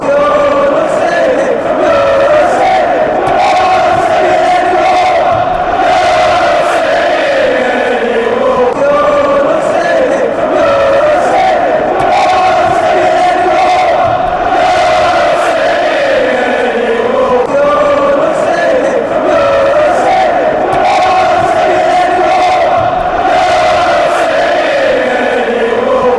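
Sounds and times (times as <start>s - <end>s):
football fans chanting: 0.0s - 26.1s.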